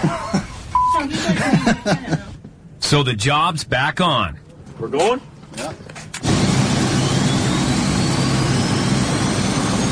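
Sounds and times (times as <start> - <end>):
speech: 0.0 - 0.3, 1.3 - 2.2, 2.9 - 6.1
laughter: 0.0 - 2.4
Electra propeller airplane engines roaring on the tarmac: 5.3 - 9.9.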